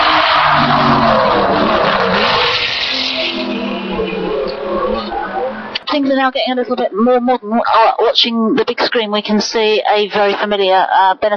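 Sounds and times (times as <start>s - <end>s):
small four-cylinder engine vehicle driving past: 0.0s - 5.8s
speech: 6.2s - 11.3s.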